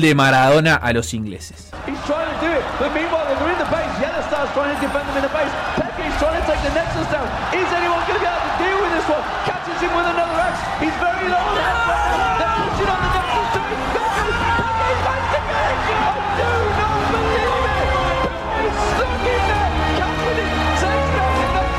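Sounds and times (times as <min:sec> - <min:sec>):
speech: 0:00.0 - 0:05.8
large crowd at an esports event roaring and cheering: 0:01.7 - 0:21.7
excited voices shouting: 0:01.8 - 0:21.7.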